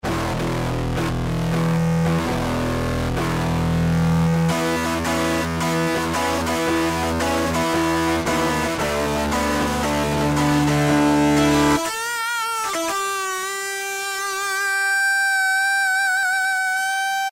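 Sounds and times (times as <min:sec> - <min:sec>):
distorted Yamaha TG33 synthesizer factory preset: 0:00.0 - 0:17.2.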